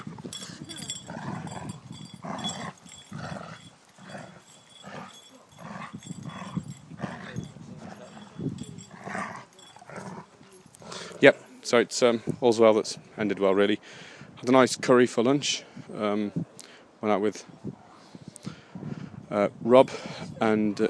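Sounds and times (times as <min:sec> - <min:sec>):
large dog growling: 0:00.6 - 0:11.2
speech: 0:11.2 - 0:17.6, 0:19.3 - 0:20.8.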